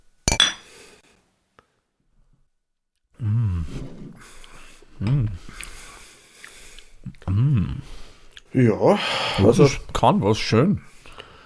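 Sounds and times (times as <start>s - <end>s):
beer glasses clinking in a toast: 0.3s - 0.7s
person sighing: 3.2s - 6.0s, 7.0s - 8.0s
speech: 8.6s - 10.9s.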